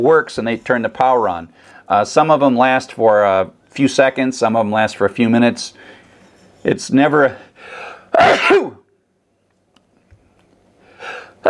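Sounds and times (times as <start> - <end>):
speech: 0.0 - 6.0, 6.6 - 8.8
strong burst of breath: 7.5 - 8.1, 10.8 - 11.4
person sneezing from dust of a spinning hard drive: 8.1 - 8.9, 11.2 - 11.4.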